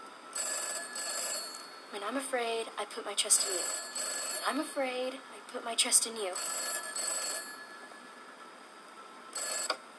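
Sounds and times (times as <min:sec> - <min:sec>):
telephone ringing with a high-pitched electronic trill: 0:00.3 - 0:02.2, 0:03.3 - 0:04.8, 0:06.2 - 0:08.3, 0:09.3 - 0:09.8
speech: 0:02.0 - 0:06.6.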